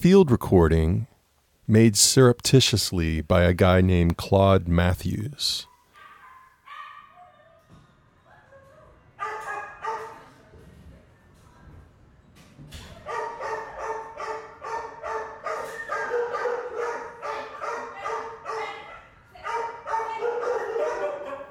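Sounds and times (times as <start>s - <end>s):
speech: 0.0s - 1.1s, 1.7s - 5.7s
hundreds of dogs barking and whining in an animal shelter in Manhattan: 5.7s - 10.4s, 12.9s - 21.4s.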